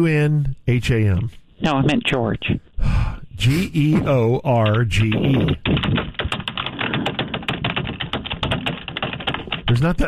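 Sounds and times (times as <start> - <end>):
speech: 0.0 - 6.1, 9.7 - 10.0
rapid typing on a keyboard: 4.0 - 10.0.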